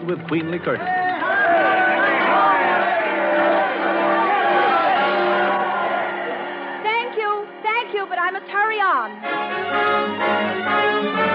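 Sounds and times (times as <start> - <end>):
speech: 0.0 - 1.7, 8.5 - 11.2
crowd cheering and shouting at a train station: 0.8 - 7.6.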